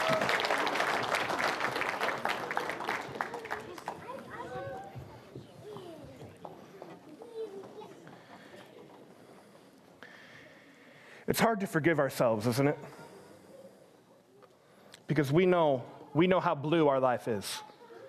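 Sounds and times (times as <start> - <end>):
audience applause for a group of children: 0.0 - 4.9
children's voices and chatter: 3.1 - 9.7, 17.6 - 18.0
speech: 11.3 - 13.0, 15.2 - 17.7.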